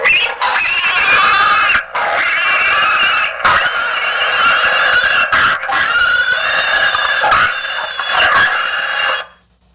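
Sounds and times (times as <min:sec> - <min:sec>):
12-volt pig squealing novelty car horn: 0:00.0 - 0:09.4.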